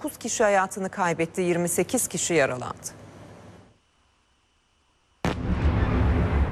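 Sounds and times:
speech: 0.0 - 3.0
explosions during missile and drone attack: 5.2 - 6.4.

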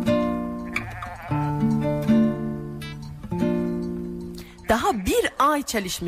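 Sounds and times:
sheep bleating: 0.2 - 3.1, 4.4 - 5.6
speech: 4.7 - 6.0.

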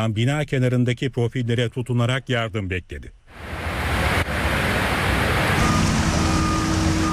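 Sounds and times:
speech: 0.0 - 3.6
rushing floodwater in streets: 3.3 - 7.1.

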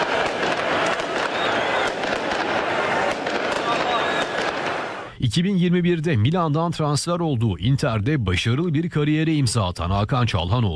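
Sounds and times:
fireworks crackling pops: 0.0 - 5.0
crowd roaring at a night-time football championship celebration: 0.0 - 5.1
speech: 5.3 - 10.7.

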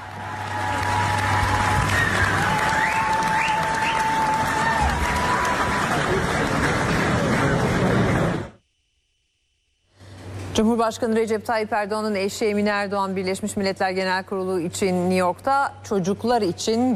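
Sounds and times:
large audience applause at a panel event in a hall: 0.0 - 8.6
faint whistles or shouts from the audience: 1.8 - 4.1
speech: 10.6 - 16.9.

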